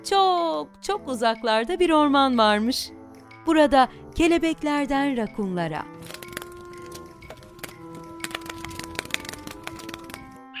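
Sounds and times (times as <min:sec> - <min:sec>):
speech: 0:00.0 - 0:06.0
woodpecker pecking on wood: 0:05.9 - 0:10.4.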